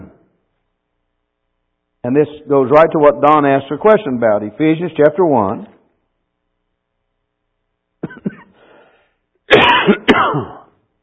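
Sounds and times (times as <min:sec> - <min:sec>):
speech: 0:02.0 - 0:05.8, 0:09.9 - 0:10.6
person coughing: 0:08.0 - 0:08.8, 0:09.5 - 0:10.8.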